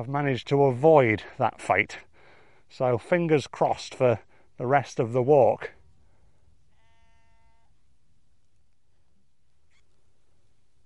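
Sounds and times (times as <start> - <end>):
speech: 0.0 - 2.1, 2.7 - 5.8
sheep bleating on an open moor: 6.7 - 7.7.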